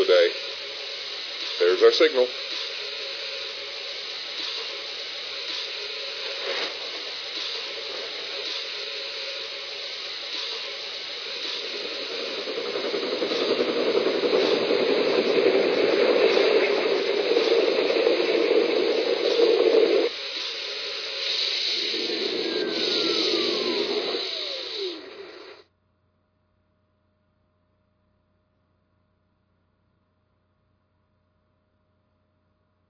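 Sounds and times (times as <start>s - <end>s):
steam locomotive hissing escaping steam: 0.0s - 25.6s
speech: 1.8s - 2.5s
low mechanical rumble: 2.4s - 25.6s.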